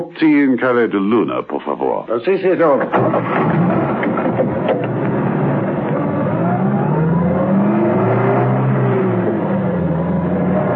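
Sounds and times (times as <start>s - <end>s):
speech: 0.0s - 3.8s
taxi engine driving through narrow streets: 2.9s - 10.7s.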